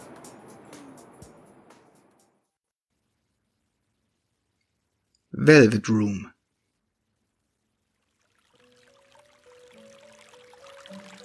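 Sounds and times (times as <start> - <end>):
speech: 5.4 - 6.3
water gently trickling and splashing: 7.7 - 11.2.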